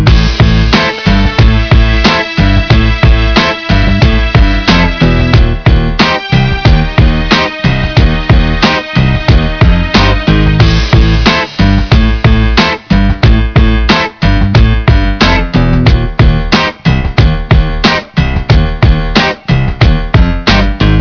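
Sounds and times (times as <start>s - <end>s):
music loop: 0.0s - 21.0s.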